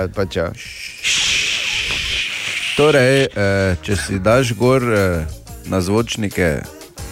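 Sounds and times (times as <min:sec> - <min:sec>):
speech: 0:00.0 - 0:01.3, 0:02.8 - 0:06.8
voice imitating radio static with steady hissing: 0:00.5 - 0:04.6.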